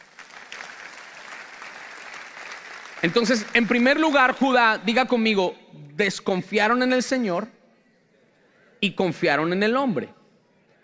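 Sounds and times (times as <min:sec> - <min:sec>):
church congregation applauding during a sermon: 0:00.0 - 0:04.8
speech: 0:03.0 - 0:07.6, 0:08.8 - 0:10.2.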